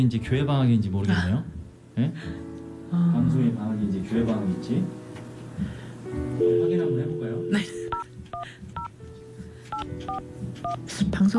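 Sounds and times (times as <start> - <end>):
speech: 0.0 - 5.0, 5.6 - 8.0, 10.1 - 11.3
telephone keypad tones dialing a number: 9.7 - 10.8.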